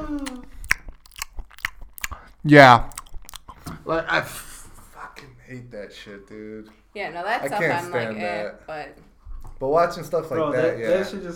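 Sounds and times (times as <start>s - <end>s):
wet crunchy chewing right up against the microphone: 0.0s - 3.8s
speech: 2.4s - 2.9s, 3.9s - 4.5s, 5.5s - 11.3s.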